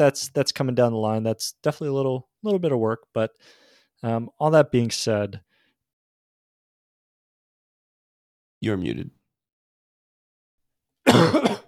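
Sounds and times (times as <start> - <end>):
speech: 0.0 - 5.5, 8.6 - 9.2
person coughing: 11.0 - 11.6.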